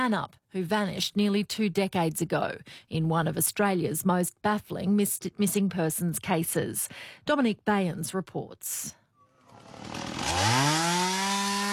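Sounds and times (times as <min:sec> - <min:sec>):
speech: 0:00.0 - 0:09.0, 0:09.7 - 0:10.6
chainsaw cutting in bushland south of Perth Western Australia: 0:09.3 - 0:11.7.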